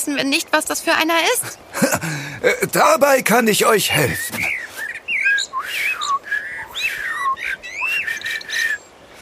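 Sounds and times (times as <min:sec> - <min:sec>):
speech: 0:00.0 - 0:04.5
common blackbird singing fluty whistled phrases: 0:03.8 - 0:09.0.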